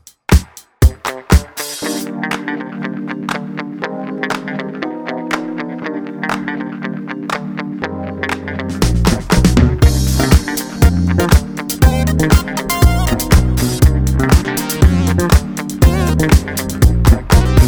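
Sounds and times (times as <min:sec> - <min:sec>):
pop funk music: 0:00.3 - 0:17.6.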